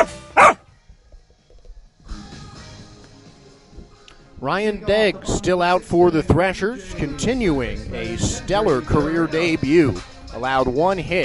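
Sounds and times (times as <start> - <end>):
dog barking: 0.0 - 0.6
speech: 4.4 - 11.2.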